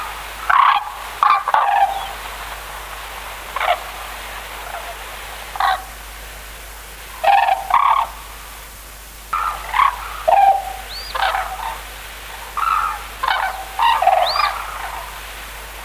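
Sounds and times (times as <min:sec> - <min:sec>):
white-naped crane honking calls: 0:00.0 - 0:06.1, 0:07.1 - 0:08.4, 0:09.2 - 0:15.8.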